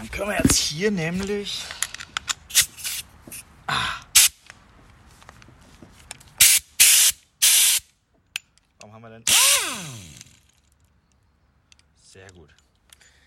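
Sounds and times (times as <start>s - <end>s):
speech: 0.0s - 1.8s, 3.7s - 4.0s
compressed air hose blowing during tire work: 2.5s - 3.5s, 4.2s - 4.4s, 6.4s - 7.8s.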